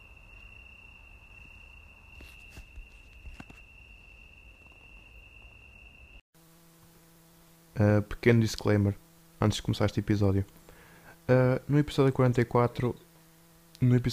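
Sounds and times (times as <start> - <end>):
crickets chirping at night: 0.0 - 6.3
speech: 7.8 - 10.6, 11.3 - 13.1, 13.8 - 14.1.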